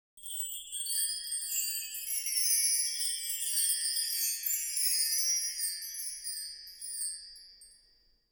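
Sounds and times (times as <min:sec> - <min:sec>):
wind chime ringing: 0:00.2 - 0:08.0.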